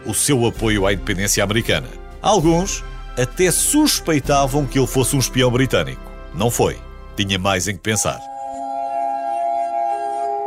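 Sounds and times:
speech: 0.1s - 8.3s
sustained pure ringing tones: 8.0s - 10.4s.

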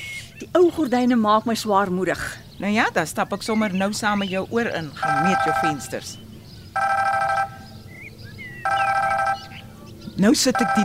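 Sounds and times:
low steady hum: 0.0s - 10.8s
speech: 0.4s - 6.2s, 10.2s - 10.8s
telephone ringing with electronic trill: 5.0s - 6.0s, 6.8s - 7.6s, 8.6s - 9.6s, 10.5s - 10.8s.

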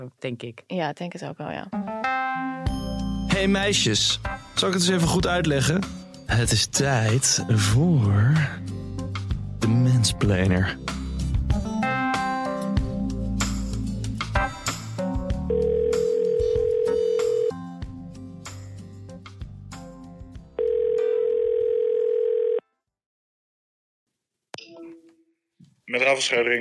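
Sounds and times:
speech: 0.0s - 1.9s, 3.4s - 8.8s, 9.6s - 11.0s, 26.2s - 26.5s
music playing: 1.7s - 20.6s
ringback tones of an outgoing telephone call: 15.5s - 17.6s, 20.6s - 22.7s.

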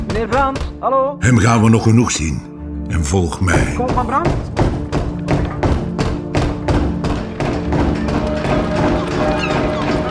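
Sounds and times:
heavy fists pounding on a wooden door: 0.0s - 0.8s, 3.8s - 10.0s
speech: 0.2s - 4.7s.

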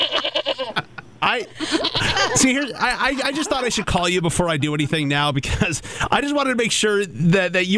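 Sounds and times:
goat bleating: 0.0s - 0.8s, 1.6s - 2.5s
laughter: 0.0s - 5.8s
speech: 1.3s - 7.7s.

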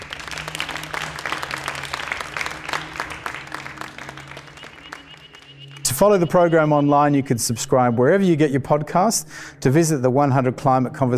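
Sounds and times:
audience applause: 0.0s - 6.7s
speech: 6.0s - 11.1s.

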